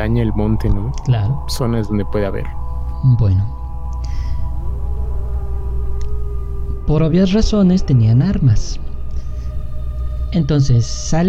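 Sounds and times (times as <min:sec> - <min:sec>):
speech: 0:00.0 - 0:04.2, 0:06.9 - 0:08.9, 0:10.3 - 0:11.2
low constant rumble: 0:00.0 - 0:11.2
wolf howling: 0:00.0 - 0:11.2
faint clicks: 0:06.0 - 0:06.2.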